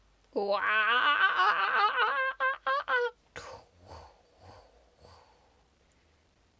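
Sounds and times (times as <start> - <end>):
person imitating a kookaburra call: 0.3 - 4.6
speech: 0.4 - 2.0.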